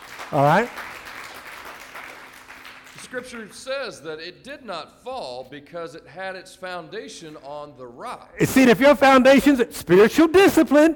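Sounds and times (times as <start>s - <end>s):
church audience hand clapping: 0.0s - 3.2s
speech: 0.3s - 0.8s, 3.1s - 10.9s.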